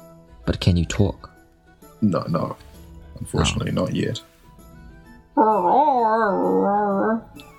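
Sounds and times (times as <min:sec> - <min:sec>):
speech: 0:00.6 - 0:01.3, 0:02.0 - 0:04.3, 0:05.4 - 0:07.5
person imitating a dog with a howl-like bark: 0:05.4 - 0:07.3.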